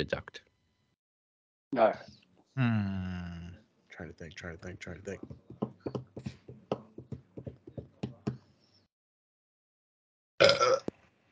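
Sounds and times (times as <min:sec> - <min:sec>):
speech: 0:00.0 - 0:00.5, 0:01.7 - 0:03.4, 0:04.0 - 0:06.4
rhythmic hollow clip-clop knocks: 0:05.1 - 0:08.4
short loud rough burp: 0:10.4 - 0:10.9.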